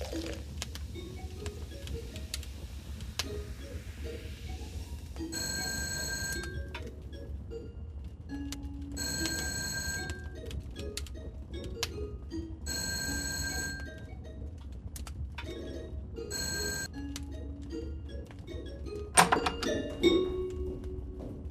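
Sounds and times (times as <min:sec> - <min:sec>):
steady hum: 0:00.0 - 0:21.4
electric telephone bell ringing: 0:05.3 - 0:06.6, 0:09.0 - 0:10.3, 0:12.7 - 0:13.9, 0:16.3 - 0:16.9.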